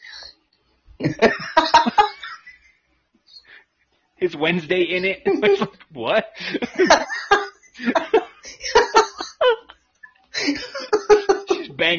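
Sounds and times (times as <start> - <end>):
speech: 1.0 - 2.1, 4.2 - 7.2
laughter: 1.0 - 2.7, 6.4 - 9.8, 10.4 - 11.6
woman coughing: 10.4 - 11.8.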